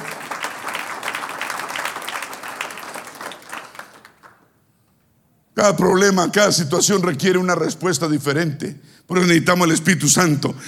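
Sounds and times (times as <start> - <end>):
audience applauding: 0.0 - 4.5
speech: 5.6 - 10.6.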